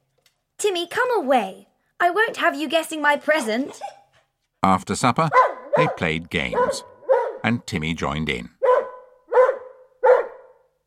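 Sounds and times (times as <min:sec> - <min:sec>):
speech: 0:00.6 - 0:04.0, 0:04.6 - 0:08.6
dog barking excitedly: 0:03.6 - 0:04.3, 0:05.3 - 0:07.5, 0:08.5 - 0:10.6.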